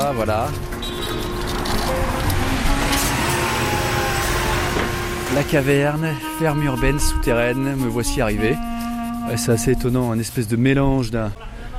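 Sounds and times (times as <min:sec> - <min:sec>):
vehicles passing: 0:00.0 - 0:06.8
city street traffic at Porte de la Chapelle in Paris: 0:00.0 - 0:11.7
speech: 0:00.1 - 0:01.2, 0:05.3 - 0:08.7, 0:09.3 - 0:11.5.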